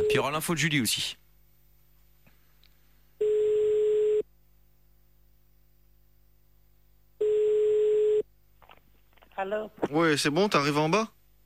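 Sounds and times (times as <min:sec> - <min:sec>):
speech: 0:00.1 - 0:01.2, 0:09.4 - 0:11.2
telephone ringback tones while calling a caller's mother back: 0:03.2 - 0:04.2, 0:07.2 - 0:08.2.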